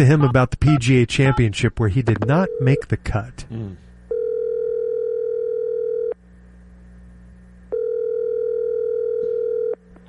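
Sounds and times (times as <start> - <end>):
speech: 0.0 - 3.8
telephone dial tone: 4.1 - 6.2, 7.7 - 9.8.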